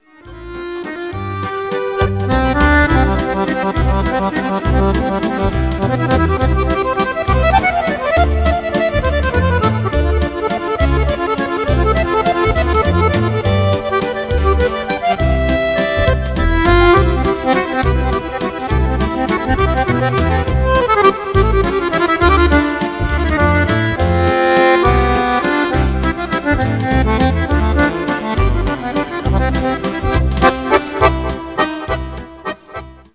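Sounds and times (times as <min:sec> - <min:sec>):
accordion playing: 0:00.0 - 0:33.1.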